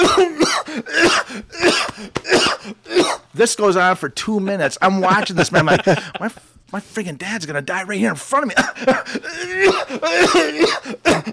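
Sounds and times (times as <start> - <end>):
voice imitating a man's harsh coughing fit: 0.0 - 3.3, 8.5 - 11.3
speech: 3.4 - 11.3
laughter: 5.0 - 6.5.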